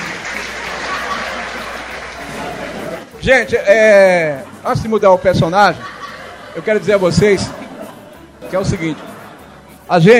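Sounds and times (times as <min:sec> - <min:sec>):
audience applauding: 0:00.0 - 0:03.1
laughter: 0:00.0 - 0:03.2, 0:03.8 - 0:09.9
speech: 0:03.2 - 0:05.9, 0:06.6 - 0:07.6, 0:08.5 - 0:09.1, 0:09.9 - 0:10.1.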